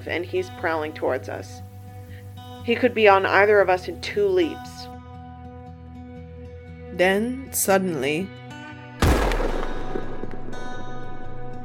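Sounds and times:
speech: 0.0 - 1.7, 2.6 - 4.9, 7.0 - 8.4
single gunshot fired in the desert to scare off a cougar: 9.0 - 11.1.

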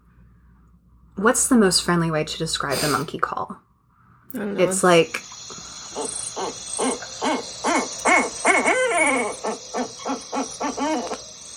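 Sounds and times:
speech: 1.2 - 3.6, 4.3 - 6.9
thin steady insect buzz: 4.6 - 11.5
two owls hooting: 4.8 - 11.5.

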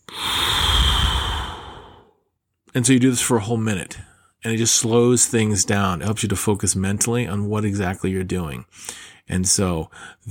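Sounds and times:
slow breath drawn during a paced breathing exercise: 0.0 - 2.2, 8.7 - 9.2, 9.9 - 10.2
speech: 2.8 - 10.2.

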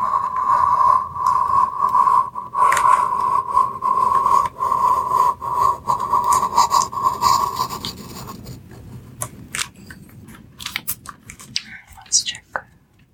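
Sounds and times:
pencil tracing on paper: 0.0 - 9.0.

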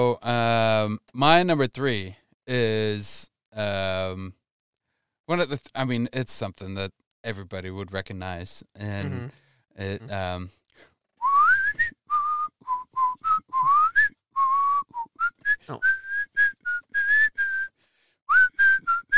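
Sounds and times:
speech: 0.0 - 4.4, 5.3 - 10.6, 15.7 - 16.0
person whistling a disco-era pop melody: 11.2 - 19.1.

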